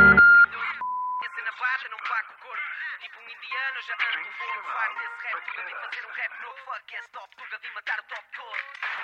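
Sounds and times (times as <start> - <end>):
voicemail beep: 0.0 - 1.3
person talking over a thin telephone-like line: 0.5 - 8.8.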